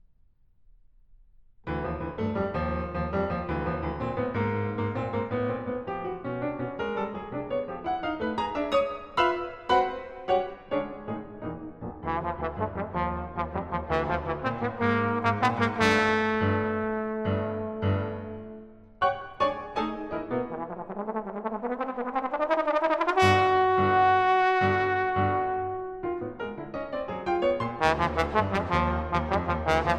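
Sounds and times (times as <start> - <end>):
piano playing a sonata: 1.7 - 29.9
trombone playing a sonata: 12.0 - 18.7, 20.4 - 26.1, 27.6 - 29.9.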